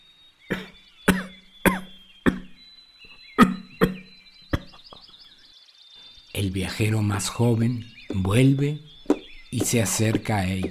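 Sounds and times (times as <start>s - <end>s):
man coughing harshly: 0.5s - 2.5s
speech: 6.4s - 8.9s, 9.5s - 10.6s.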